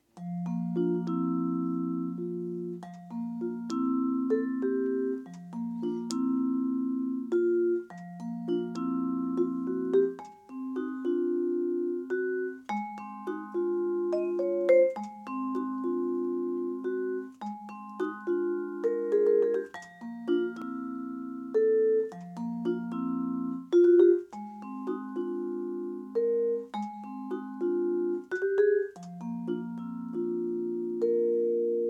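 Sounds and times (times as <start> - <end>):
vibraphone playing a fast dampening etude with dead strokes: 0.2 - 31.8.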